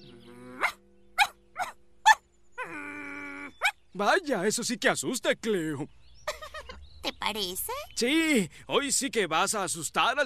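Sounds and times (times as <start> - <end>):
dog barking: 0.6 - 2.2
speech: 4.0 - 6.0, 7.3 - 10.2.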